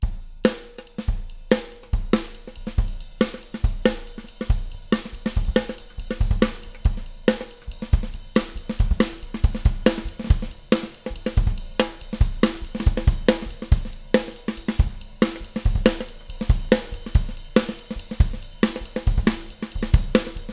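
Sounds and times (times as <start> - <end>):
high acoustic studio snare drum loop: 0.5 - 20.5.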